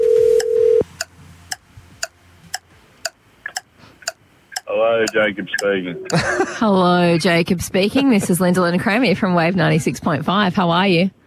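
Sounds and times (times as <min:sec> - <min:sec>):
short steady telephone tone: 0:00.0 - 0:00.8
sharp clicking ticks as a telephone call connects: 0:00.4 - 0:06.3
speech: 0:04.8 - 0:11.2
laughter: 0:06.0 - 0:06.8.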